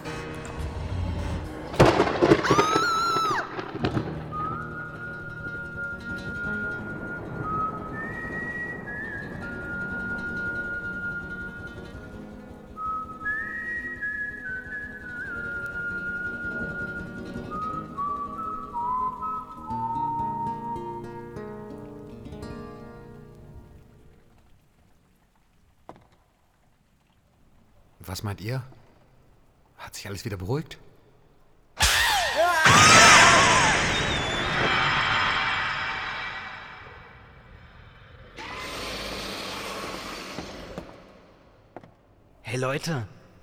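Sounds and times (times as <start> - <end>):
sharp loud thunder crack: 0.0 - 14.1, 31.8 - 41.4
eerie whistled melody: 0.0 - 23.4, 31.8 - 40.0
steady rain hissing: 0.0 - 30.3, 31.2 - 43.4
speech: 28.2 - 28.7, 30.1 - 30.8, 42.6 - 43.2.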